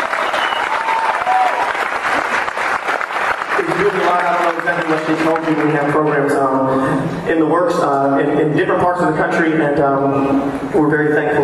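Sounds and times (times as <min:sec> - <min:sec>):
live audience clapping: 0:00.0 - 0:06.4
speech: 0:03.8 - 0:11.4.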